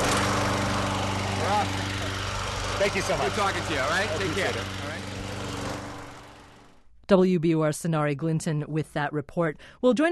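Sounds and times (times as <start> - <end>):
lawn mower engine running: 0.0 - 6.8
speech: 2.8 - 5.1, 7.1 - 10.1.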